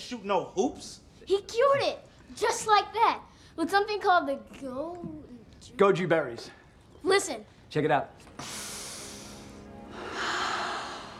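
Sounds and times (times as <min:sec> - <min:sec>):
speech: 0:00.1 - 0:08.6
deep breathing in and out as a calming breath exercise: 0:08.3 - 0:11.1.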